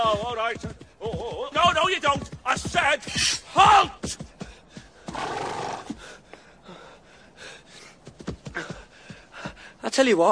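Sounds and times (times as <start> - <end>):
speech: 0.1 - 4.2, 10.0 - 10.2
horse whinnying: 5.1 - 6.0.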